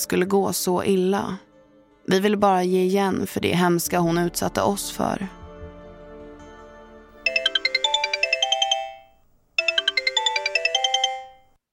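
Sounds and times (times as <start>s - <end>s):
speech: 0.0s - 1.5s, 2.1s - 5.4s
telephone ringing with electronic trill: 7.2s - 11.6s.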